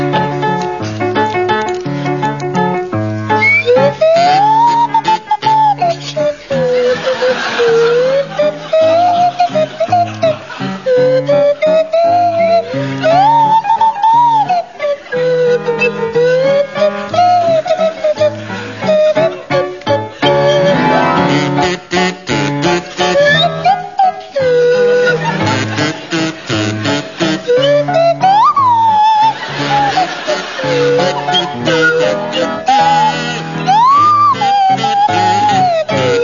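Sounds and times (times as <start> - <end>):
steady accompaniment to an oom-pah tune: 0.0 - 36.2
swanee whistle playing a bouncy oom-pah tune: 3.3 - 21.6, 23.0 - 26.2, 26.8 - 36.2
audience chuckling: 3.4 - 21.6, 23.2 - 36.2
buzzing kazoo playing a bouncy oom-pah tune: 3.7 - 10.2, 20.3 - 23.8, 25.1 - 36.2.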